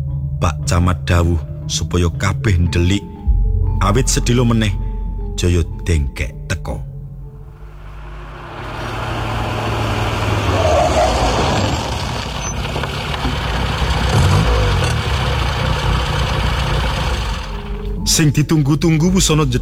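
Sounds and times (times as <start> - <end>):
brown sedan car engine arriving and driving into a yard: 0.0 - 19.6
speech: 0.4 - 3.1, 3.8 - 4.8, 5.4 - 6.9, 18.2 - 19.6
faint higher clicks: 7.4 - 18.0.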